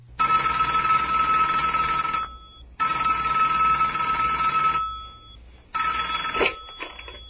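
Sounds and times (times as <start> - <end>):
telephone bell ringing loudly: 0.2 - 7.2.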